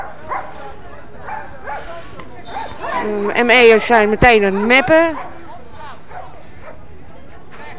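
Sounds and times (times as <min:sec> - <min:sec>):
dog barking in short sharp yelps: 0:00.0 - 0:03.1, 0:04.4 - 0:06.9
constant murmur of voices: 0:00.0 - 0:07.7
speech: 0:03.0 - 0:05.3.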